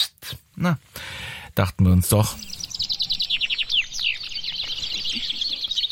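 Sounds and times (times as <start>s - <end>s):
speech: 0.6s - 2.6s
dense chorus of finches trilling and chirping: 2.1s - 5.9s.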